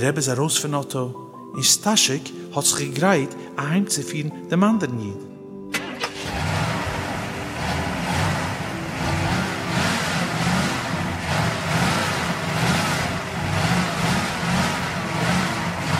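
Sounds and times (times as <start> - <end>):
speech: 0.0 - 5.3
car engine cranking and revving: 5.8 - 15.9.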